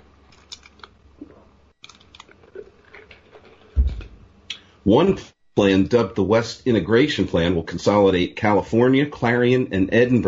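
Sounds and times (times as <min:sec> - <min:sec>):
person sipping water: 0:01.2 - 0:04.7
speech: 0:04.8 - 0:10.2.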